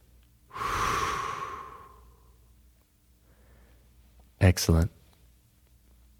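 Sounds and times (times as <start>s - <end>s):
long deep exhale blown through the lips with slight whistling tone: 0.5s - 2.2s
speech: 4.4s - 5.0s.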